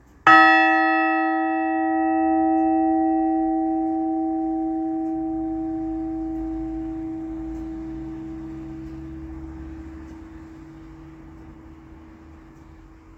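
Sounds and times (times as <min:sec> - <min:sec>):
bells in Sussex: 0:00.0 - 0:13.1.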